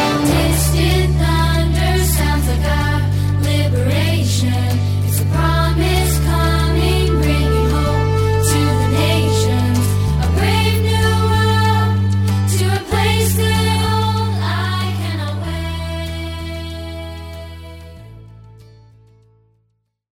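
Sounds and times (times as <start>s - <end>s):
person singing traditional vocal music: 0.1s - 18.0s.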